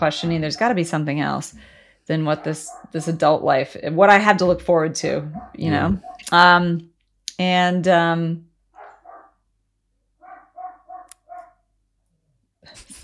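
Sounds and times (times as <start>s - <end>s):
speech: 0.0s - 8.5s
dog barking: 2.3s - 3.2s, 5.3s - 6.3s, 8.8s - 9.4s, 10.2s - 11.6s.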